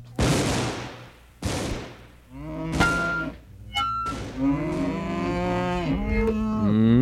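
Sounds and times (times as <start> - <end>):
sharp loud bangs: 0.2 - 3.4, 4.0 - 5.0
cow mooing in long drawn-out lows: 2.3 - 6.9.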